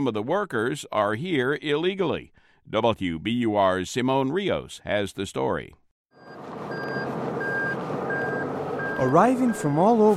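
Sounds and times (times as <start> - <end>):
speech: 0.0 - 5.8, 9.0 - 10.1
truck reversing alarm beeping at a tire recycling plant: 6.2 - 10.1.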